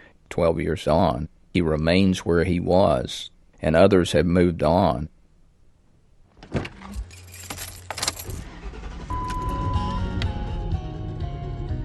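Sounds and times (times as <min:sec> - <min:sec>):
speech: 0:00.4 - 0:05.2, 0:06.5 - 0:06.7
Lincoln Town Car engine and road noise cruising on highway: 0:06.2 - 0:11.8
keys jangling: 0:06.8 - 0:08.4.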